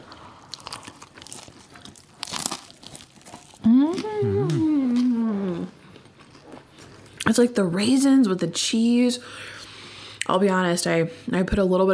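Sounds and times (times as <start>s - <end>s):
crunchy bite and chewing of freshly made capirotada: 0.0s - 7.3s
person humming: 3.6s - 5.7s
speech: 3.9s - 4.6s, 7.3s - 9.6s, 10.3s - 11.9s.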